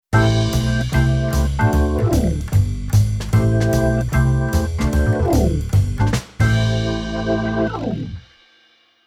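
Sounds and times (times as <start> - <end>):
keyboard organ playing jazz: 0.2 - 8.2.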